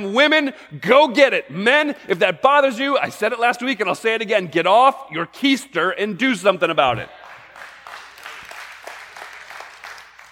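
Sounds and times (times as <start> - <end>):
speech: 0.0 - 7.2
audience clapping: 6.9 - 10.3.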